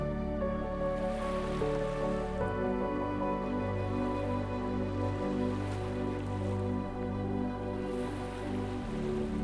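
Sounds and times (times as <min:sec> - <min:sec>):
soft sustained musical drone: 0:00.0 - 0:09.4
ocean waves washing onto a beach: 0:00.7 - 0:09.4.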